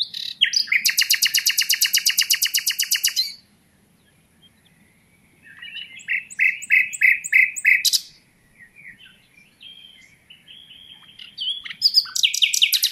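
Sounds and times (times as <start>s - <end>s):
common nightingale (Luscinia megarhynchos) singing: 0.0s - 12.9s.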